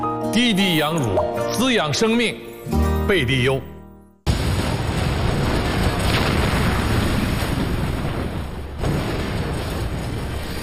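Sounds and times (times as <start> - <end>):
speech: 0.4 - 3.7
ship explosion: 4.3 - 10.6.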